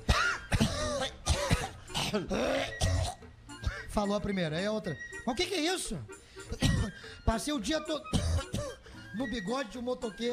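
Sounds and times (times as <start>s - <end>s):
storyteller performing exaggerated theatrical coughing imitating a flea: 0.0s - 4.0s, 6.4s - 7.2s, 8.1s - 8.9s
speech: 2.1s - 2.8s, 4.0s - 6.7s, 7.3s - 8.2s, 9.2s - 10.3s.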